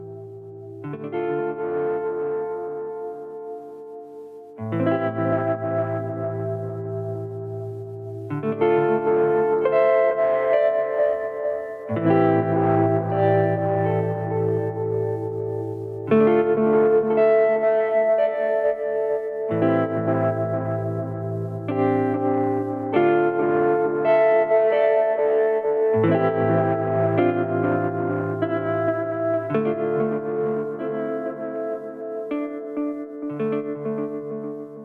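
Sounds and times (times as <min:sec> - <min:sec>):
mellotron-style keyboard chords through delay, reverb and tremolo: 0:00.0 - 0:34.8.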